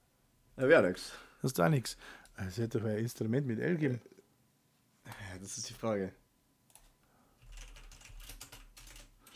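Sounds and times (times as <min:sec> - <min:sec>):
speech: 0:00.6 - 0:04.2, 0:05.0 - 0:06.2
typing on a computer keyboard: 0:06.7 - 0:09.3.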